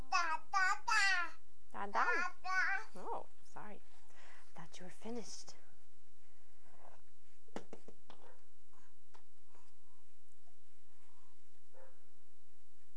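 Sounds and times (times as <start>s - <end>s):
low hum: 0.0s - 12.9s
speech: 4.8s - 5.6s
dog barking outside: 11.7s - 12.1s.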